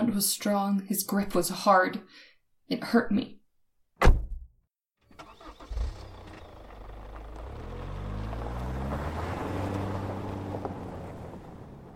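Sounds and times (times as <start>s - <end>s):
speech: 0.2s - 3.4s
sharp knock: 4.0s - 4.5s
coupe engine starting and driving away at night: 5.0s - 11.9s.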